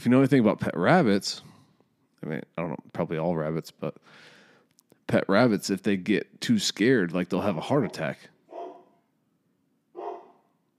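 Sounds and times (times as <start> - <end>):
speech: 0.0 - 1.5, 2.2 - 4.3, 5.1 - 8.3
dog barking: 7.8 - 9.0, 10.0 - 10.5.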